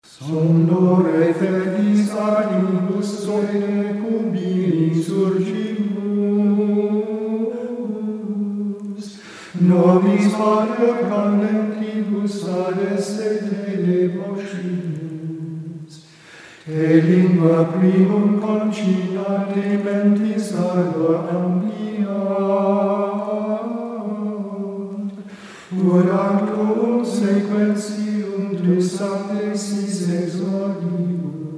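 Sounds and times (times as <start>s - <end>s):
Gregorian chant singing at a vigil: 0.0s - 31.5s.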